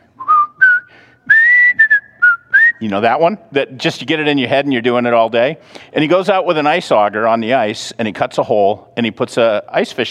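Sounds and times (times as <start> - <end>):
man whistling a TV show theme tune: 0.2 - 2.8
speech: 2.8 - 10.0.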